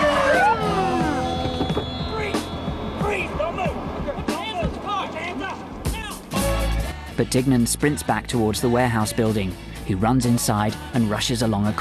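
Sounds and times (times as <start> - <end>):
police car tire noise: 0.0 - 6.5
police sirens wailing: 0.0 - 6.8
police car engines speeding into a car park: 0.0 - 9.9
indistinct voices: 0.0 - 11.7
speech: 7.2 - 11.7.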